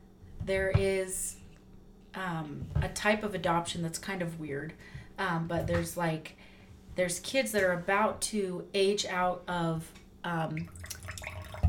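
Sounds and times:
speech: 0.5s - 1.4s, 2.1s - 10.9s
coffee splashing and trickling into a cup: 10.7s - 11.6s.

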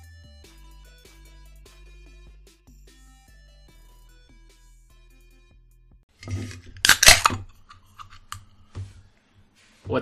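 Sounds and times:
pull tab cracking on a can of hard seltzer: 6.2s - 8.5s
speech: 9.9s - 10.0s.

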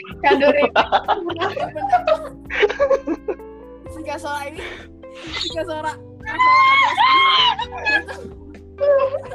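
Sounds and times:
speech: 0.0s - 3.0s, 3.9s - 9.3s
laughter: 0.0s - 3.4s, 6.4s - 9.3s
person screaming loudly: 6.3s - 8.2s.

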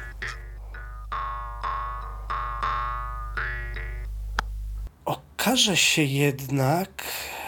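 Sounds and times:
jew's harp twanging in plucked notes over a low drone: 0.0s - 4.2s
speech: 5.1s - 7.3s.

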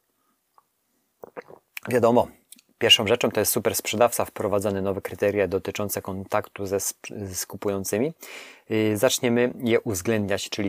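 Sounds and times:
soft wet sipping and swallowing of tea: 0.5s - 1.9s
speech: 1.8s - 10.6s.

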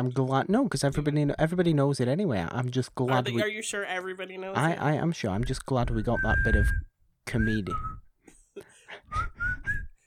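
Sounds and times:
speech: 0.0s - 8.0s
person whistling a short high tune: 5.9s - 8.1s, 9.1s - 10.0s
breathy sounds between phrases: 8.3s - 10.0s.

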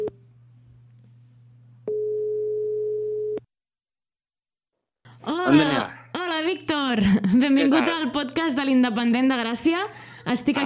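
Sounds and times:
phone line ringback tone beep: 1.9s - 3.4s
speech: 6.5s - 10.6s.

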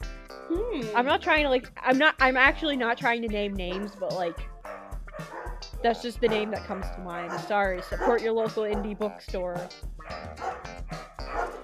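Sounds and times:
speech: 0.5s - 4.5s, 5.8s - 10.4s
several dogs barking: 3.7s - 9.1s, 10.0s - 11.6s.

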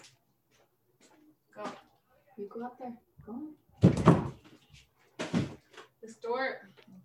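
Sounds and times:
speech: 2.4s - 3.6s, 6.0s - 6.8s
door being nudged open by a dog: 3.8s - 4.4s, 5.2s - 5.6s.

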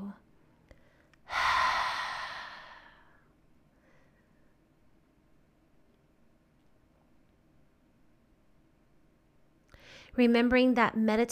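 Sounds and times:
deep exhale through an open mouth during a full-body stretch: 1.3s - 3.2s
speech: 10.2s - 11.3s.

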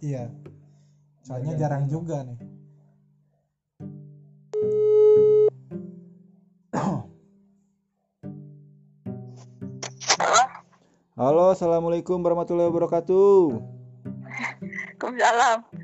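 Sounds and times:
speech: 0.0s - 0.6s, 1.2s - 2.5s, 11.2s - 13.8s, 15.1s - 15.7s
telephone busy signal while placing a call: 4.6s - 5.5s.

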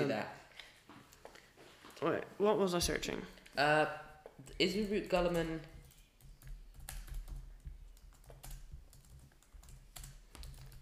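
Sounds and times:
speech: 0.1s - 0.4s, 2.0s - 5.7s
typing on a laptop keyboard: 4.8s - 10.7s.

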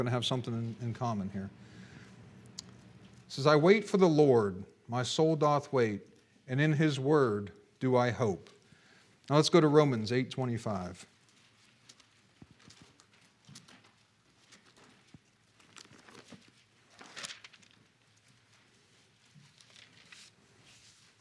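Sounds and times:
speech: 0.0s - 1.8s, 3.3s - 8.6s, 9.3s - 11.1s
thin Bible pages rustling and flipping: 11.2s - 21.1s.

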